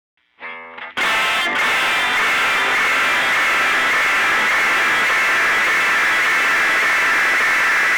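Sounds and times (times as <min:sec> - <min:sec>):
wet tube delay with long feedback and treble: 0:01.0 - 0:07.9.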